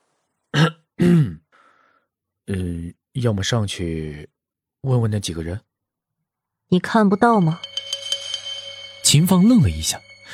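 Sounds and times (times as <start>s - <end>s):
person deliberately coughing to clear the throat: 0.6s - 1.4s
speech: 1.0s - 1.4s, 2.5s - 5.7s, 6.7s - 7.7s, 9.0s - 10.3s.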